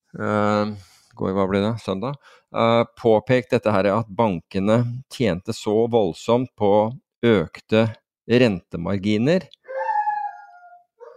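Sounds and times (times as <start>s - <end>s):
speech: 0.1s - 9.6s
dog howling: 9.7s - 11.1s.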